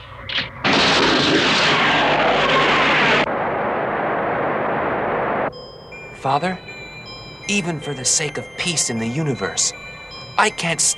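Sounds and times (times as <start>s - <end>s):
sci-fi laser torpedo firing blast: 0.6s - 5.5s
speech: 6.2s - 6.7s, 7.5s - 10.9s.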